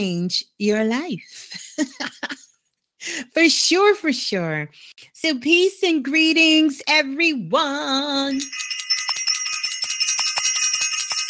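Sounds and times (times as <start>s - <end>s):
speech: 0.0s - 2.4s, 3.0s - 8.8s
bell ringing with rapid repeated strikes: 8.3s - 11.2s.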